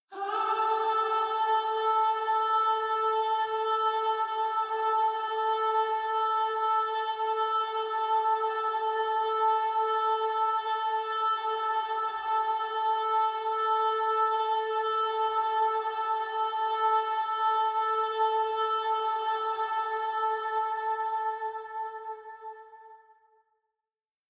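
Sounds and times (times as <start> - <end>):
pop vocal singing without scoop: 0.0 - 23.3.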